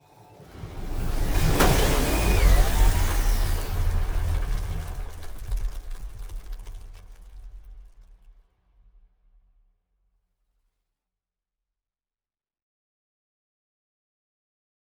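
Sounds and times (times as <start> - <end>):
transport ship moving: 0.5 - 7.7.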